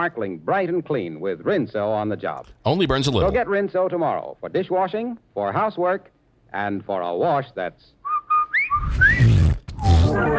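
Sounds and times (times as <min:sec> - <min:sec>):
speech: 0:00.0 - 0:08.0, 0:08.8 - 0:09.4
person failing at whistling: 0:08.0 - 0:10.3
grunt-like snorts: 0:09.1 - 0:10.2.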